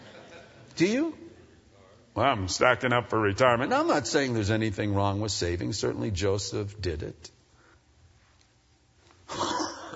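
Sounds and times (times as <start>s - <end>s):
speech: 0.8s - 1.2s, 2.2s - 7.4s
person coughing rough raspy cough: 9.3s - 9.9s.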